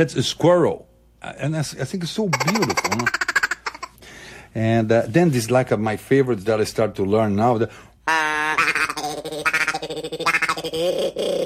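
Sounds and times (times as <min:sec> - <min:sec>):
speech: 0:00.0 - 0:03.2, 0:04.5 - 0:07.9, 0:09.8 - 0:11.4
duck call blown in raspy nasal quacks: 0:08.1 - 0:10.9.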